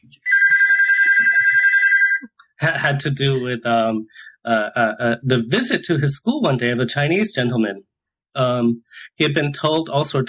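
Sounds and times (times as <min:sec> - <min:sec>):
telephone ringing with a trilling electronic bell tone: 0:00.3 - 0:02.3
speech: 0:02.6 - 0:10.2.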